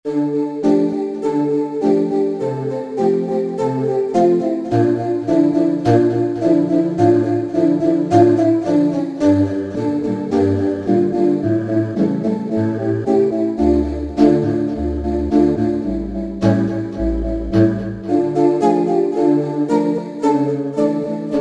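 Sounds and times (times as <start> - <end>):
Roland V-Synth choral factory patch: 0.1 - 21.3.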